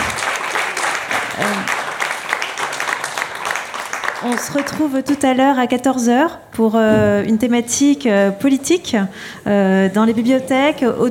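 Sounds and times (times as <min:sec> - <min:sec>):
audience applause: 0:00.0 - 0:04.7
speech: 0:04.2 - 0:11.0.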